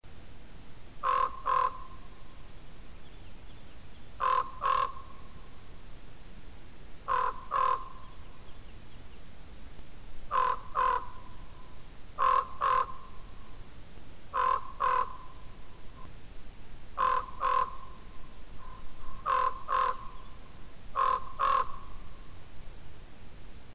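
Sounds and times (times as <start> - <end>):
common raven calling: 1.0 - 2.3, 4.1 - 5.5, 7.0 - 8.4, 10.3 - 13.4, 14.3 - 16.1, 17.0 - 22.3.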